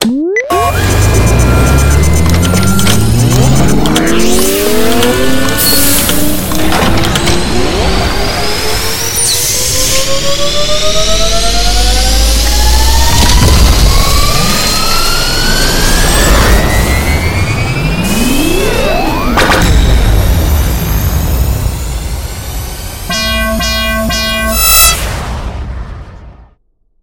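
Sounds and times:
blaster being readied to fire on a spaceship: 0.5s - 26.0s.

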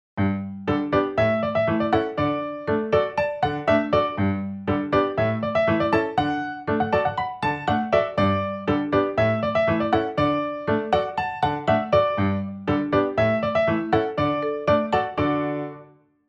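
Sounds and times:
cheerful rhythm: 0.2s - 16.0s.

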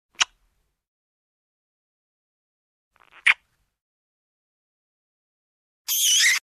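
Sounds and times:
kissing sounds: 0.2s - 0.4s, 3.0s - 3.5s, 5.9s - 6.4s.

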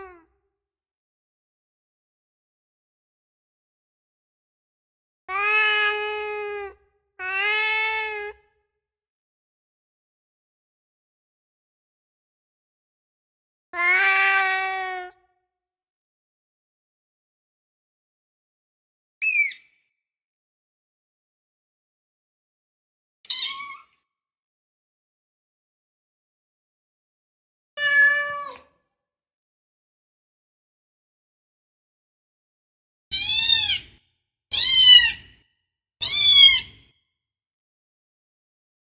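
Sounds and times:
cats meowing demandingly: 5.3s - 6.5s, 7.2s - 8.3s, 13.7s - 15.1s, 27.8s - 28.6s, 33.1s - 34.0s, 34.5s - 35.3s, 36.0s - 36.7s.

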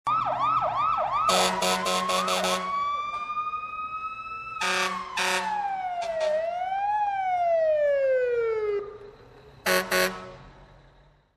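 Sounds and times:
fire siren: 0.0s - 11.2s
air horn: 1.3s - 2.7s, 4.6s - 5.6s, 9.7s - 10.4s.

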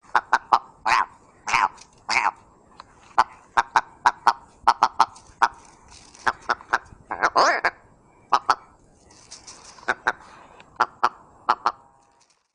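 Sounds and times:
partridge calling: 0.0s - 11.8s.

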